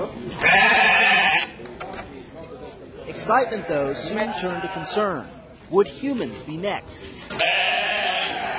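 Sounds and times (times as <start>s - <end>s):
speech: 0.0s - 0.7s, 3.2s - 7.9s
single sheep bleating: 0.4s - 1.6s, 3.4s - 5.0s, 7.3s - 8.5s.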